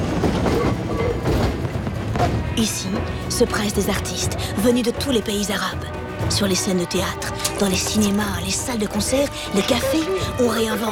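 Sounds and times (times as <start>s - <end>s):
tram rolling on rails through a city street in Cairo at night: 0.0s - 4.2s
speech: 2.6s - 10.9s.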